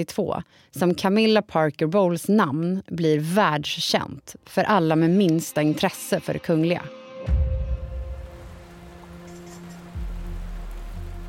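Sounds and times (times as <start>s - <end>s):
speech: 0.0s - 7.5s
rain falling at night: 7.8s - 11.2s.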